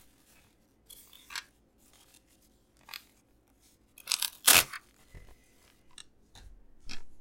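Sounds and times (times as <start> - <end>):
paper torn in short raspy rips: 4.1 - 4.8.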